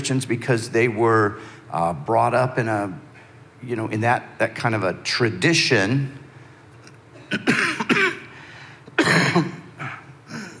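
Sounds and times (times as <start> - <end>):
speech: 0.0 - 6.2, 7.3 - 8.0, 9.1 - 9.6
person coughing hard into a handheld microphone: 7.2 - 8.4, 9.0 - 10.5.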